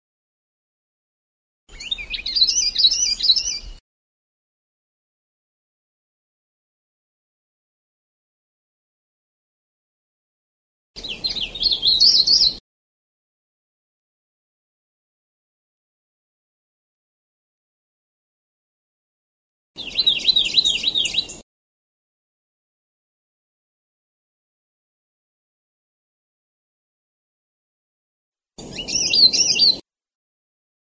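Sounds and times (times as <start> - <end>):
cikrak sulawesi bird chirping: 1.7 - 3.8, 11.0 - 12.6, 19.8 - 21.4, 28.6 - 29.8.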